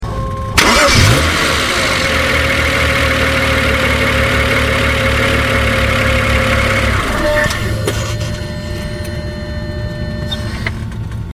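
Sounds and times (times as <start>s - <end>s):
135i Coupe ignition and engine starting outside: 0.4s - 11.3s.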